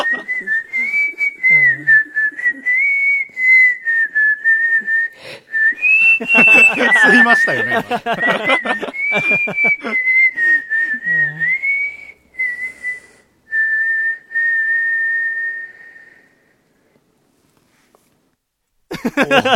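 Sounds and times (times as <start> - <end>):
laughter: 0.0 - 0.5, 6.1 - 10.1, 18.9 - 19.5
person whistling the chorus melody of a song: 0.0 - 16.3
person breathing: 5.1 - 5.6, 12.6 - 13.4
speech: 6.2 - 10.2.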